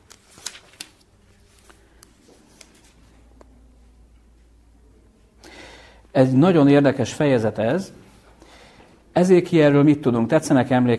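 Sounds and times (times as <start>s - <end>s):
Bible paper pages being flipped: 0.0s - 3.2s
speech: 6.2s - 8.0s, 9.2s - 10.9s.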